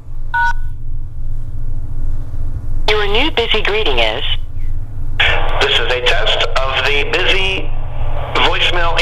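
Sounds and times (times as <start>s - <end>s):
steady low hum: 0.0s - 9.0s
two-tone telephone keypad beep as the pound key is pressed: 0.4s - 0.7s
speech: 2.9s - 4.4s.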